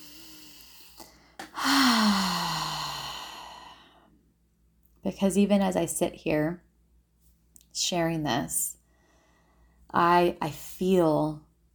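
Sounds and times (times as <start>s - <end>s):
deep grounding breath with long voiced sighing exhale: 0.0s - 4.1s
speech: 5.1s - 6.7s, 7.8s - 8.8s, 9.9s - 11.5s.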